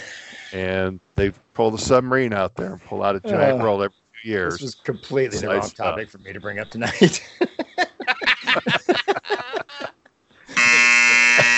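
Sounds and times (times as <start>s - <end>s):
laughter: 0.0s - 9.9s, 10.5s - 11.5s
speech: 0.5s - 7.9s
loud steady electronic buzzer: 10.6s - 11.5s.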